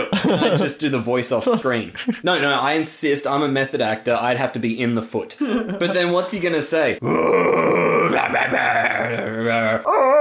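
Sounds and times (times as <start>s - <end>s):
laughter: 0.0s - 2.3s, 5.4s - 6.1s
speech: 0.0s - 10.1s
person imitating a monkey or ape with hooting and whooping: 7.0s - 10.1s.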